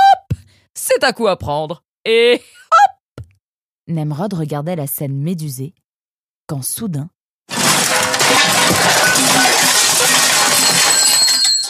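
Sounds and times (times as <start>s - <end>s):
speech: 1.0s - 2.6s, 3.9s - 5.8s, 6.5s - 7.2s
rolling office chair crashing into piles of paper in an office: 7.5s - 11.6s.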